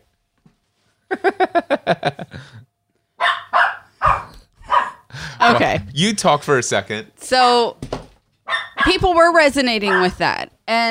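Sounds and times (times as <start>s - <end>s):
speech: 1.1s - 2.3s, 6.0s - 7.9s, 8.8s - 10.9s
laughter: 1.1s - 2.6s
dog barking at a balloon: 3.2s - 5.1s, 8.5s - 9.1s, 9.8s - 10.2s.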